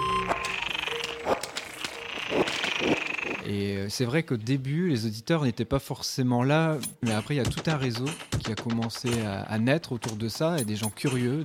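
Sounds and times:
frogs in distress calling from a pond below a slag heap in Nord-Pas-de-Calais France: 0:00.2 - 0:03.4
speech: 0:03.5 - 0:11.4.

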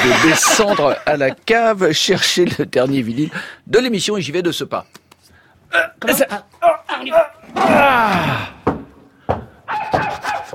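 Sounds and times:
laughter: 0:00.0 - 0:01.6
speech: 0:00.0 - 0:05.1, 0:05.7 - 0:08.6
dog barking: 0:09.7 - 0:10.5.

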